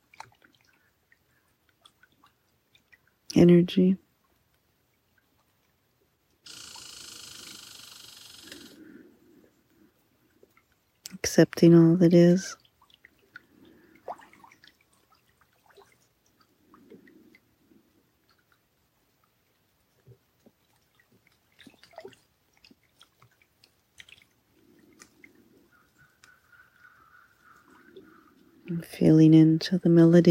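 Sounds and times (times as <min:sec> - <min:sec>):
light rain dripping by a lake shore: 0:00.0 - 0:06.6, 0:08.3 - 0:29.7
speech: 0:03.3 - 0:04.0, 0:11.4 - 0:12.6, 0:29.6 - 0:30.2
faint bird chirps: 0:06.5 - 0:08.8, 0:25.6 - 0:28.4.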